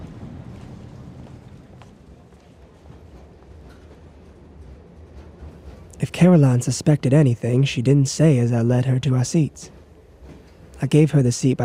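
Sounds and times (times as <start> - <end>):
faint clattering and shuffling of people boarding a train: 0.0 - 6.5, 9.6 - 10.9
low rumble inside a train as people board: 0.0 - 11.6
speech: 6.1 - 9.8, 10.8 - 11.6.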